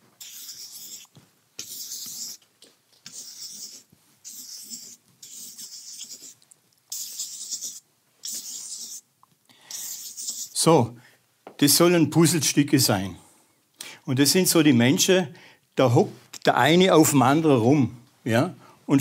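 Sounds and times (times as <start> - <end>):
pen or marker scratching across a surface drawing a diagram: 0.2 - 2.4, 3.1 - 9.0, 9.8 - 10.6
speech: 10.6 - 11.0, 11.6 - 13.3, 14.1 - 19.0.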